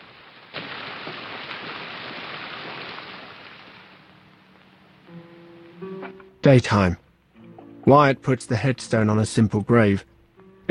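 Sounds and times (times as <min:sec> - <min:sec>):
pouring rain: 0:00.0 - 0:05.8
speech: 0:06.4 - 0:07.0, 0:07.9 - 0:10.1.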